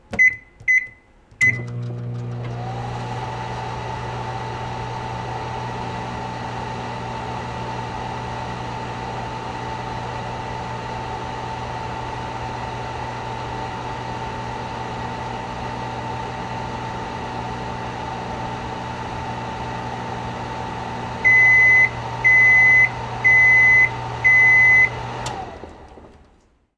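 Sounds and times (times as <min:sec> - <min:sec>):
microwave oven: 0:00.2 - 0:26.3.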